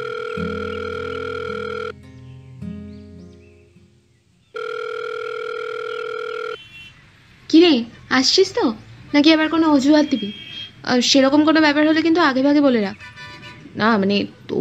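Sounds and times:
telephone ringback tone as an outgoing call is placed: 0.0 - 2.0, 4.6 - 6.6
speech: 0.4 - 0.8, 8.2 - 13.1, 13.8 - 14.4.

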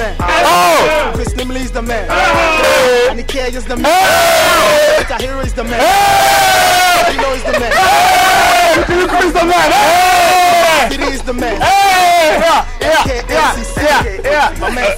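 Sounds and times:
group of men shouting and cheering: 0.0 - 14.9
speech: 1.4 - 14.9
laughter: 2.1 - 3.4, 4.4 - 14.9.

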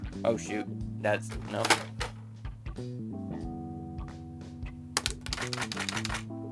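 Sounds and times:
speech: 0.2 - 2.0, 2.8 - 3.2
Brother AX26 computerized electronic typewriter keys clacking: 5.0 - 6.3.

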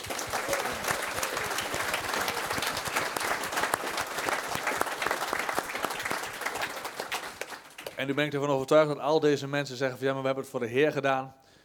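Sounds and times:
congregation applauding: 0.0 - 8.2
speech: 8.0 - 11.4.

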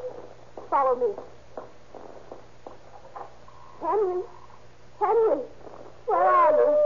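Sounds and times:
speech: 0.7 - 1.4, 3.8 - 4.4, 5.0 - 6.8
dog howling on a back porch: 6.1 - 6.8.

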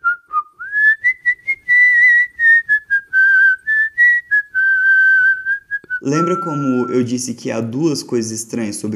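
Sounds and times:
person whistling a cheerful melody at night: 0.0 - 7.1
speech: 6.0 - 8.9.

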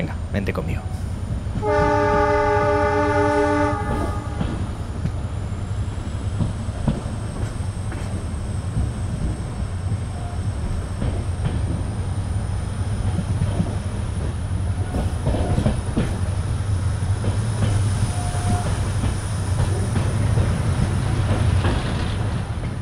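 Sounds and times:
train rumbling and rattling on rails: 0.0 - 22.8
sustained horn-like tone: 1.6 - 4.5.

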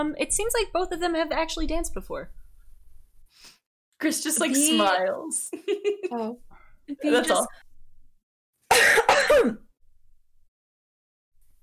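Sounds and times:
speech: 0.0 - 2.4, 3.4 - 7.6, 8.8 - 9.6
person coughing deliberately: 8.7 - 9.7.

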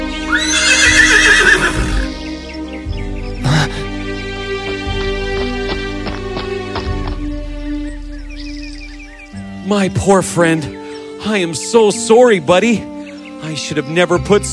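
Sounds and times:
horse neighing: 0.2 - 2.2
horse hoofbeats clip-clopping on a hard surface: 4.4 - 7.7
speech: 9.9 - 14.5.

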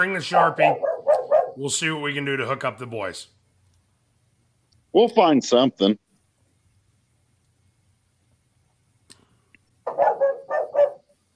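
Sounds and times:
speech: 0.0 - 0.9, 1.6 - 3.4, 4.9 - 6.0
dog barking excitedly: 0.6 - 1.6, 9.8 - 11.1.

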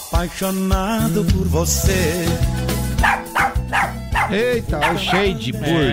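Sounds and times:
speech: 0.2 - 3.2, 4.3 - 5.9
dog barking: 3.0 - 5.4.

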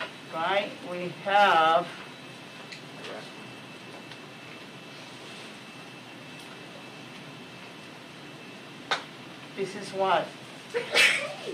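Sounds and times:
speech: 0.4 - 2.1, 9.6 - 11.5
sneeze: 10.8 - 11.5.

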